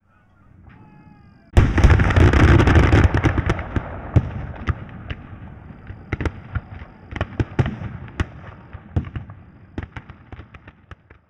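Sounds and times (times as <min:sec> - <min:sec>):
person shouting a fire command in period combat: 0:00.0 - 0:01.6
distant musket volley in period combat: 0:00.0 - 0:11.2.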